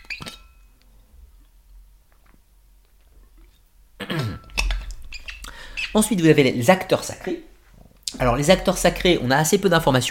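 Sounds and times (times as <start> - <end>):
person sipping a drink: 2.1 - 3.6
speech: 5.9 - 7.5, 8.2 - 10.0.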